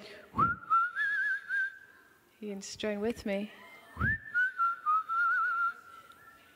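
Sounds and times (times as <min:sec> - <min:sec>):
person whistling a tune: 0:00.4 - 0:01.9, 0:04.0 - 0:06.5
speech: 0:02.4 - 0:04.2.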